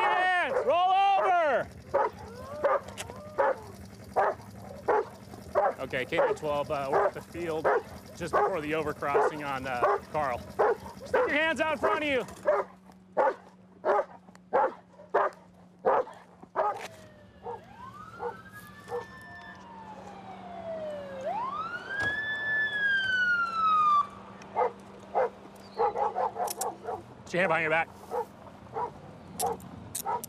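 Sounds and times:
siren wailing: 0:00.0 - 0:12.2, 0:16.8 - 0:24.8
low steady hum: 0:00.0 - 0:30.2
dog barking: 0:00.4 - 0:00.7, 0:01.9 - 0:16.8, 0:17.4 - 0:19.1, 0:24.6 - 0:27.1, 0:28.1 - 0:30.2
speech: 0:05.9 - 0:12.7, 0:27.3 - 0:28.0.

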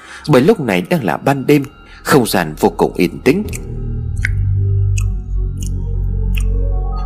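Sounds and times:
speech: 0:00.2 - 0:03.8
steady low rumble: 0:02.4 - 0:06.9
person chewing food: 0:03.4 - 0:06.8.

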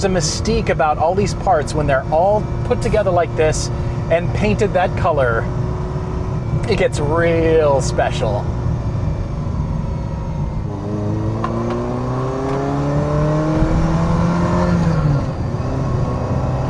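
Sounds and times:
speech: 0:00.0 - 0:05.6, 0:06.6 - 0:08.6
Ferrari Mondial T sports car engine accelerating while driving: 0:00.0 - 0:16.6
road and wind noise: 0:00.0 - 0:16.6.

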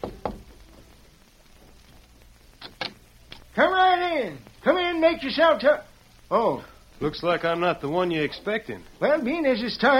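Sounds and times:
knocking on a wooden door: 0:00.0 - 0:00.6
speech: 0:03.6 - 0:09.9.

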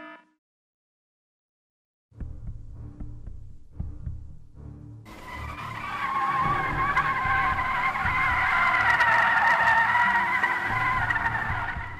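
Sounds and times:
car tire squeal from a car skidding while being driven: 0:05.1 - 0:11.9.

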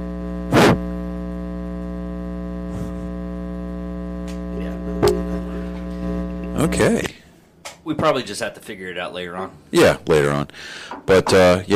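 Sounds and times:
steady buzzing electrical hum: 0:00.0 - 0:11.7
speech: 0:06.6 - 0:07.2, 0:07.9 - 0:11.7.

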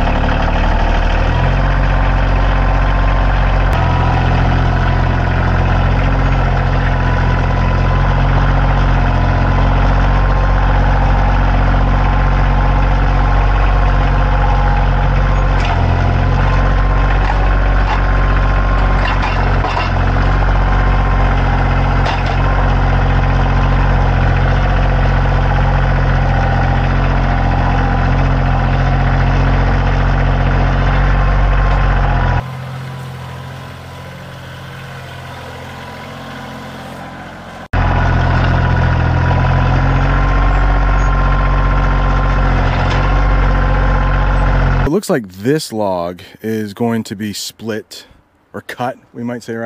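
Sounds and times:
tractor engine idling while warming up: 0:00.0 - 0:49.6
faint clanks and rattles: 0:17.1 - 0:20.0
speech: 0:45.1 - 0:49.6.

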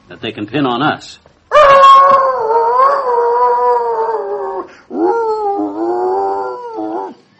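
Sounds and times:
speech: 0:00.1 - 0:01.8
dog howling out back: 0:01.5 - 0:07.2.

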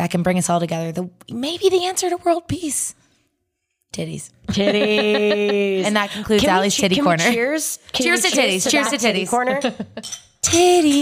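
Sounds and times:
speech: 0:00.0 - 0:03.0, 0:03.9 - 0:11.0
laughter: 0:04.5 - 0:07.4, 0:08.0 - 0:10.1
glasses of whiskey clinking in a toast in a studio: 0:08.1 - 0:11.0.

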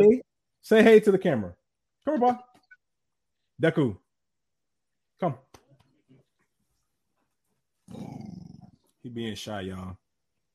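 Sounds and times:
speech: 0:00.0 - 0:02.5, 0:03.6 - 0:04.0, 0:05.2 - 0:05.5, 0:09.0 - 0:10.0
dog growling at a person: 0:07.9 - 0:08.8.

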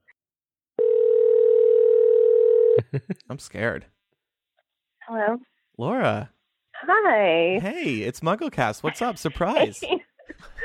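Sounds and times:
telephone dial tone while a call is placed: 0:00.8 - 0:02.8
laughter: 0:02.8 - 0:03.3, 0:08.5 - 0:10.6
speech: 0:02.9 - 0:04.0, 0:05.2 - 0:10.5.

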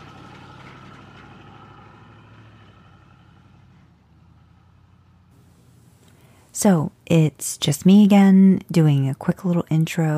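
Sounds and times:
Chevrolet Impala engine idling: 0:00.0 - 0:06.5
speech: 0:06.6 - 0:10.1.

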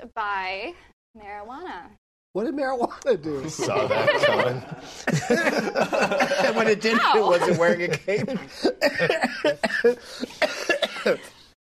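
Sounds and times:
speech: 0:00.1 - 0:11.3
laughter: 0:03.4 - 0:11.4
person coughing harshly: 0:08.6 - 0:11.4.

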